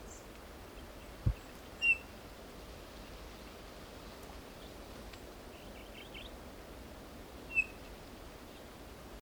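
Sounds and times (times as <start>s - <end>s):
faint bird chirps: 0.0s - 2.1s, 4.6s - 6.4s, 7.5s - 8.7s
background hiss: 0.0s - 9.1s
Eurasian bullfinch Pyrrhula pyrrhula giving soft whistled notes: 7.5s - 7.8s.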